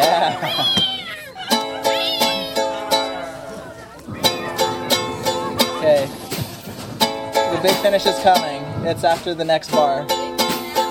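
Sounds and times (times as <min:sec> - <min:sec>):
laughter: 0:00.0 - 0:02.6, 0:03.2 - 0:06.2
audience members imitating loud cat meows: 0:00.3 - 0:03.0
steady rhythmic musical backing: 0:01.5 - 0:10.8
speech: 0:07.6 - 0:10.2.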